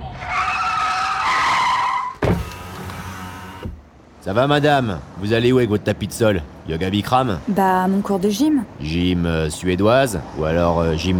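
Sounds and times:
car tires squealing in a hard-braking skid: 0.0s - 3.7s
car thump as it stops: 2.2s - 2.6s
speech: 4.2s - 11.1s.

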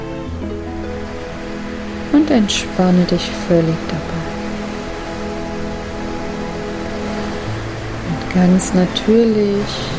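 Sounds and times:
ocean waves washing in and out: 0.0s - 9.9s
soft sustained musical tones: 0.0s - 9.9s
speech: 2.1s - 4.2s, 8.4s - 9.9s.

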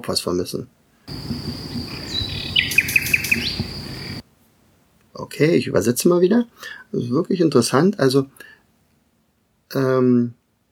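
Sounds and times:
speech: 0.0s - 1.4s, 5.3s - 8.6s, 9.7s - 10.4s
background hiss: 0.7s - 10.6s
common nightingale song: 1.1s - 4.2s
high constant tone: 1.1s - 4.2s.

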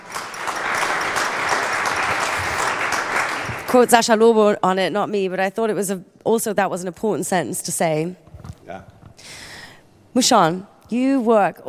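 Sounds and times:
crowd applauding: 0.0s - 3.9s
speech: 3.7s - 9.4s, 10.1s - 11.6s.

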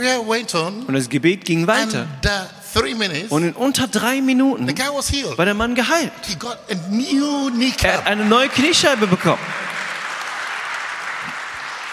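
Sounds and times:
speech: 0.0s - 9.6s
large crowd clapping: 7.2s - 11.9s.

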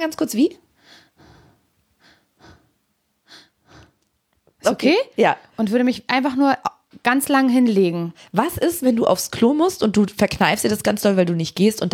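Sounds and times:
speech: 0.0s - 1.0s, 4.6s - 11.9s
quick shallow breathing: 0.8s - 4.0s.

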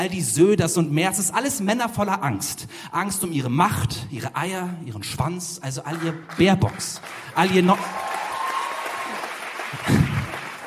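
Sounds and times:
speech: 0.0s - 8.1s
audience applause: 5.9s - 10.6s.

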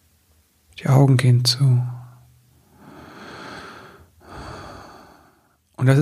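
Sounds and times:
speech: 0.8s - 2.0s, 5.8s - 6.0s
deep slow breath drawn in: 2.6s - 5.6s.

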